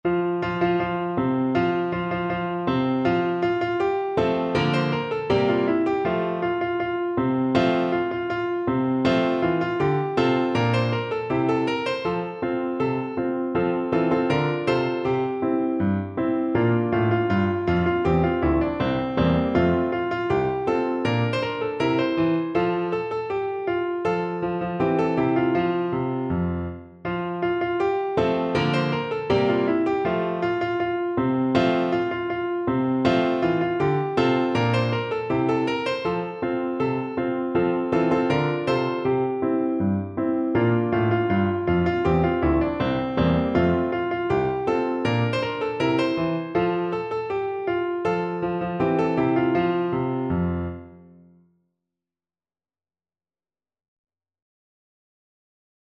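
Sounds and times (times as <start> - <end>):
piano: 0.0 - 51.6.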